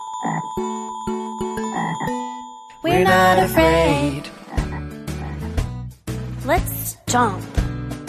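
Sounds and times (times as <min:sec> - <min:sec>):
sustained tuneful musical tones: 0:00.0 - 0:04.8
frog croaking: 0:00.1 - 0:00.8, 0:01.6 - 0:02.3, 0:04.3 - 0:05.6
speech: 0:00.2 - 0:01.0, 0:02.9 - 0:04.2, 0:07.1 - 0:07.6.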